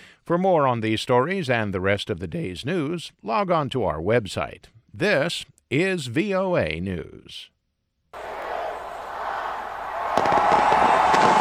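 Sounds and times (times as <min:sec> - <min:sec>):
speech: 0:00.3 - 0:07.5
fireworks exploding outdoors in a steady roaring wash: 0:08.2 - 0:11.3
sharp fireworks bang: 0:10.0 - 0:11.3.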